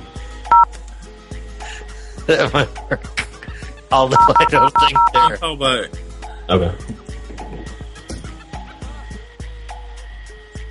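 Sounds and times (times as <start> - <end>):
speech: 2.3 - 3.2, 3.9 - 6.9
telephone keypad tone: 4.2 - 5.3.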